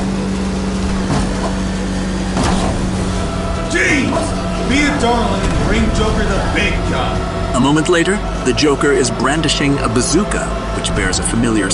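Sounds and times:
steady engine roar: 0:00.0 - 0:11.7
heavy crunching impacts: 0:00.6 - 0:11.7
speech: 0:04.2 - 0:11.7.

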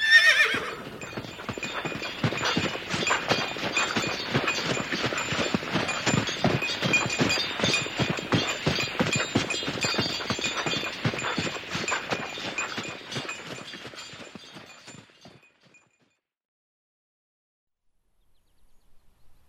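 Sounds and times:
horse whinnying: 0:00.0 - 0:01.0
hooves of a horse pulling a buckboard wagon clip-clopping: 0:00.0 - 0:16.1.

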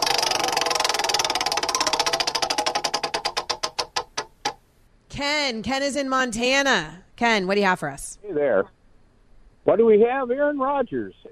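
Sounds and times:
prize wheel spinning and ticking: 0:00.0 - 0:04.6
speech: 0:05.1 - 0:08.8, 0:09.6 - 0:11.2.

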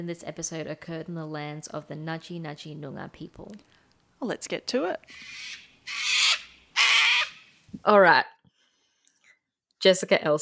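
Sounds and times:
speech: 0:00.0 - 0:06.2, 0:07.8 - 0:08.4, 0:09.8 - 0:10.4
large bird giving raspy screeches: 0:05.1 - 0:07.6.

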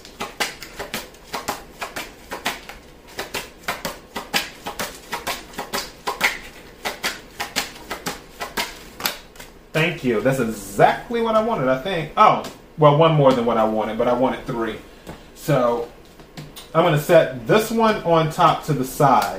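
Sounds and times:
playing cards being shuffled and handled: 0:00.0 - 0:09.6
speech: 0:09.8 - 0:15.9, 0:16.7 - 0:19.3.

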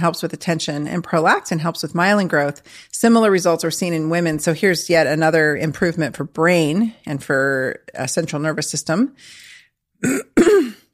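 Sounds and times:
speech: 0:00.0 - 0:10.3
rough throat clearing from a lingering cough: 0:10.0 - 0:10.9.

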